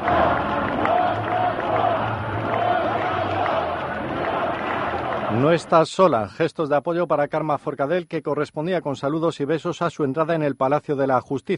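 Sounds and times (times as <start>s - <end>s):
large crowd of Catalan independence supporters in Spain shouting: 0.0s - 5.8s
speech: 5.4s - 11.5s.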